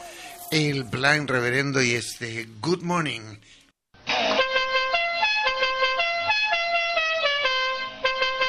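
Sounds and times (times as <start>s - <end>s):
speech: 0.5s - 3.6s
taxi car horns honking: 4.3s - 8.4s.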